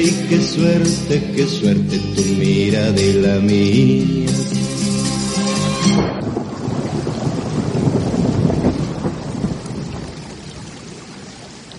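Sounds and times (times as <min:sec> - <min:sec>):
speech: 0:00.0 - 0:04.7
heavy rain pouring with low rumbling: 0:00.0 - 0:11.7.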